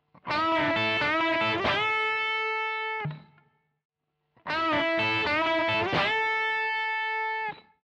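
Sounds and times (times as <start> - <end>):
guitar lick: 0.3 - 3.3, 4.5 - 7.7.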